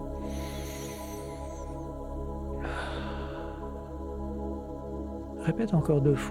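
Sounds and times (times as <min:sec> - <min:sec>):
soft steady droning tone: 0:00.0 - 0:06.2
fuller breathy exhale through mouth: 0:00.1 - 0:01.8, 0:02.5 - 0:03.8
long airy inhale through nose: 0:00.2 - 0:01.8, 0:02.6 - 0:03.7
speech: 0:05.5 - 0:06.2.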